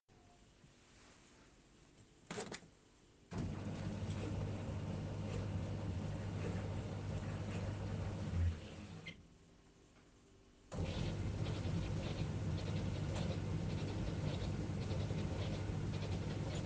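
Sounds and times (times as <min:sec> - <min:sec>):
clothes dryer running: 0:03.3 - 0:09.2, 0:10.7 - 0:16.6.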